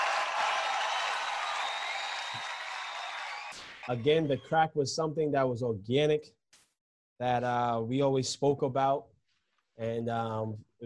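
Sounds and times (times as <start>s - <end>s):
applause: 0.0s - 4.4s
speech: 3.6s - 6.4s, 7.2s - 9.1s, 9.8s - 10.7s.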